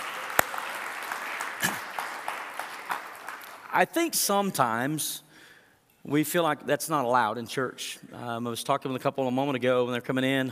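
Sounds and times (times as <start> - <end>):
audience cheering: 0.0 - 3.5
church audience clapping in praise: 0.0 - 3.9
speech: 3.7 - 5.2, 6.0 - 10.5.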